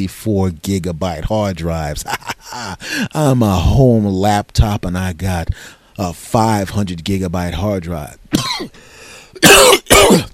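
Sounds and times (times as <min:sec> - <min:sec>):
speech: 0:00.0 - 0:10.3
harsh raspy throaty coughs: 0:08.3 - 0:08.8, 0:09.4 - 0:10.3.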